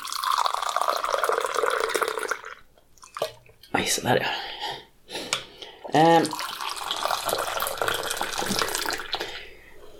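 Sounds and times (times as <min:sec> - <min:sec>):
coffee pouring into a cup: 0:00.0 - 0:03.4, 0:06.2 - 0:09.3
speech: 0:03.9 - 0:04.5, 0:06.0 - 0:06.4.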